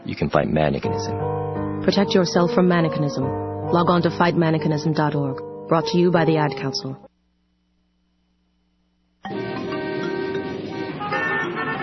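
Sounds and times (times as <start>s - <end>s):
speech: 0.2s - 7.1s
car horns blaring in busy street traffic: 9.6s - 11.8s.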